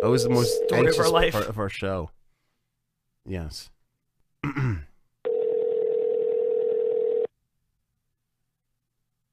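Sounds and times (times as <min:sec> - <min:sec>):
outgoing phone call electronic ring tone: 0:00.0 - 0:01.2, 0:05.3 - 0:07.3
speech: 0:00.0 - 0:02.2, 0:03.2 - 0:03.8, 0:04.4 - 0:04.9
brief throaty vocal noise: 0:04.4 - 0:05.0.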